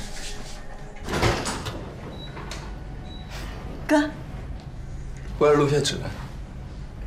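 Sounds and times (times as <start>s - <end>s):
door opening with clicks and rattles: 0.9s - 3.1s
speech: 3.9s - 4.1s, 5.4s - 6.3s.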